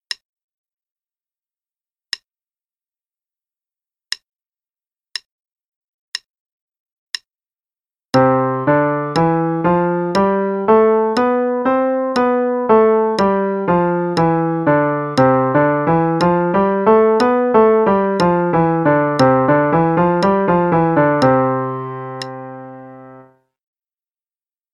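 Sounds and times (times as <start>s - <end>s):
piano playing a C major scale in eighths, triplets and sixteenths: 8.2s - 23.4s.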